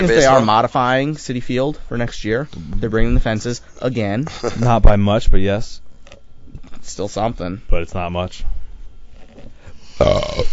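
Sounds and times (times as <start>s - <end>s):
speech: 0.0s - 5.8s, 6.9s - 8.6s, 10.0s - 10.5s
burp: 10.0s - 10.5s.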